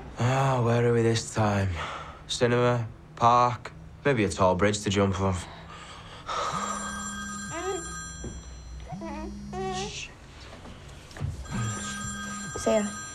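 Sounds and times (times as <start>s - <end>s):
speech: 0.6s - 5.6s, 12.7s - 13.0s
telephone ringing in long buzzy bursts: 6.3s - 10.1s, 11.4s - 13.1s.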